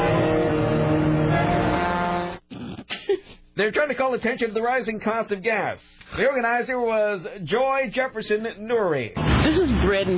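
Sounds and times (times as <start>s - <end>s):
truck horns blaring in a protest against rising gas prices in Washington DC: 0.0s - 2.5s
speech: 3.6s - 10.1s.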